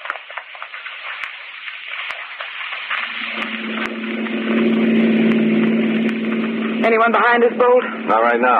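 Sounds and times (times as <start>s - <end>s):
car engine driving: 3.0s - 8.5s
speech: 6.9s - 8.5s.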